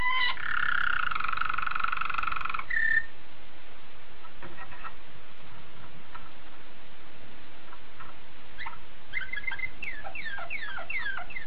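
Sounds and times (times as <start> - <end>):
Domestic canary rolling trill song: 0.0 - 3.2, 4.2 - 5.0, 7.7 - 11.4.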